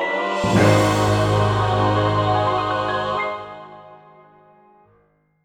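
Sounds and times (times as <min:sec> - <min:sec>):
item fanfare: 0:00.1 - 0:04.2.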